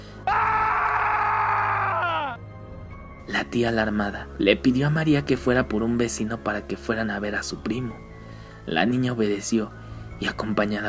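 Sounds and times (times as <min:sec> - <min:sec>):
loud piercing scream in the night: 0:00.3 - 0:02.4
speech: 0:03.4 - 0:08.0, 0:08.7 - 0:10.8.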